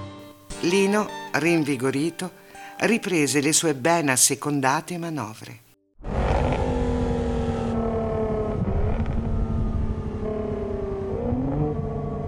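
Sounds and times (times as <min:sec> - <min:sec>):
speech: 0:00.6 - 0:05.6
Jaguar car engine roaring while downshifting: 0:06.0 - 0:12.2.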